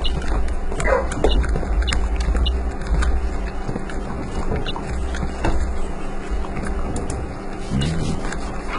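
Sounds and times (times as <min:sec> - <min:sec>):
dog lapping water: 0:00.0 - 0:08.7.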